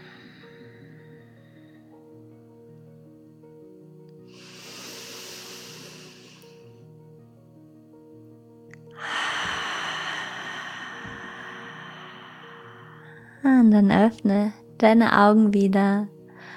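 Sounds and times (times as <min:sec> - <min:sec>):
slow deep breathing in and out during a guided relaxation exercise: 0:00.0 - 0:02.1, 0:04.3 - 0:06.9, 0:08.8 - 0:13.5, 0:16.4 - 0:16.5
soft sustained musical tones: 0:00.0 - 0:16.5
speech: 0:13.5 - 0:16.1.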